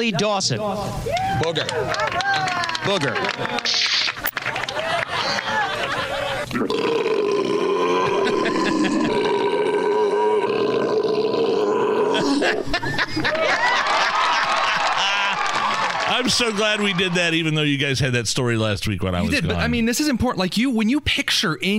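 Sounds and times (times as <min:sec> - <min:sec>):
speech: 0:00.0 - 0:04.2, 0:12.6 - 0:14.0, 0:16.2 - 0:21.7
laughter: 0:01.6 - 0:06.6, 0:07.9 - 0:09.4, 0:12.2 - 0:17.5
loud drawn-out burp with rough growling tone: 0:06.5 - 0:12.6.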